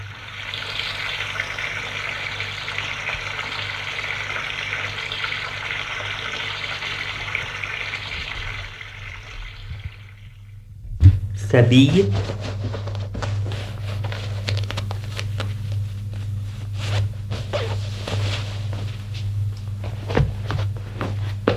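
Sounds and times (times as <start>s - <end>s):
shower water running: 0.0s - 21.5s
low hum: 5.6s - 21.5s
speech: 11.6s - 12.5s.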